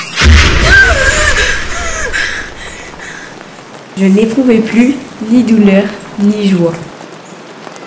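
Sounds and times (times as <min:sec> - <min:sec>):
heavy rumbling of Russian artillery cannon fire: 0:00.2 - 0:02.1
sudden loud boom: 0:00.2 - 0:02.6
speech: 0:04.0 - 0:06.9.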